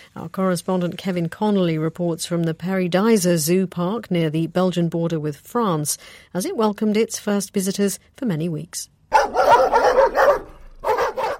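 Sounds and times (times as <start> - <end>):
speech: 0.2 - 9.4
guard dogs barking at a zoo park: 9.1 - 11.3.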